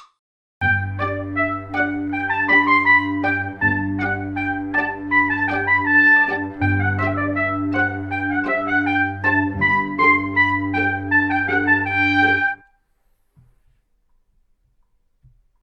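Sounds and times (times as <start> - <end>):
duet of semiquaver notes: 0.6 - 12.7.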